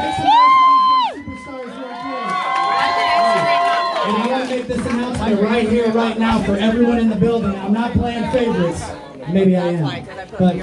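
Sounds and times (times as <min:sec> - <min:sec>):
sustained high whoop: 0:00.0 - 0:04.1
crowd cheering and shouting: 0:00.0 - 0:05.8
speech: 0:05.3 - 0:10.6.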